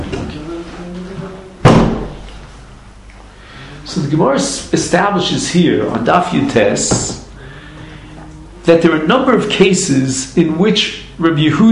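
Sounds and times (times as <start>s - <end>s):
door swinging shut with a solid thud: 1.6s - 2.3s
speech: 3.9s - 7.2s, 8.7s - 11.7s.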